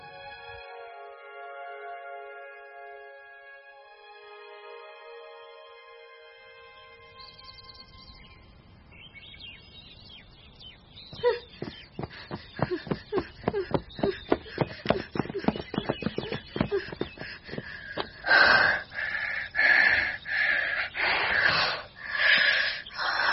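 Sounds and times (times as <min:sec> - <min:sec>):
woman panting for breath after running on a street: 0:11.2 - 0:23.3.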